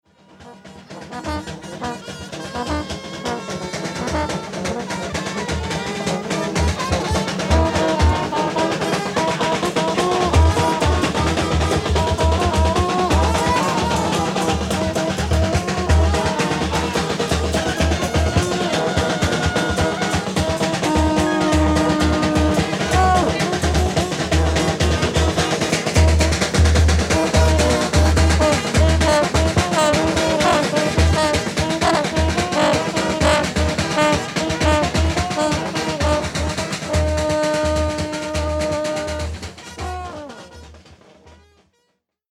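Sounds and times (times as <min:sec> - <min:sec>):
army brass marching band playing in Bouake Cote d'Ivoire: 0:00.2 - 0:41.4.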